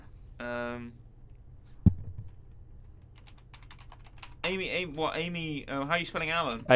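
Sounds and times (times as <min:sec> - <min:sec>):
dull thump: 0:01.8 - 0:02.3
typing on a computer keyboard: 0:03.1 - 0:05.1
speech: 0:04.5 - 0:06.7.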